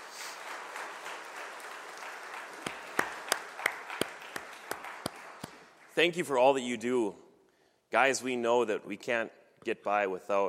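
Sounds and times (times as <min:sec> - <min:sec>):
crowd applauding mothers, grandmothers and great-grandmothers: 0:00.0 - 0:06.2
sharp claps in a steady rhythm: 0:00.0 - 0:06.4
speech: 0:06.0 - 0:07.2, 0:07.9 - 0:10.4.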